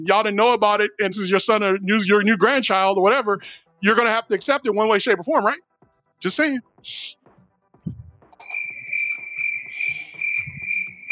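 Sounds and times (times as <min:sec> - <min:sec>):
speech: 0:00.0 - 0:07.2
low thumps: 0:07.8 - 0:08.4
high-pitched cricket trill: 0:08.4 - 0:11.1.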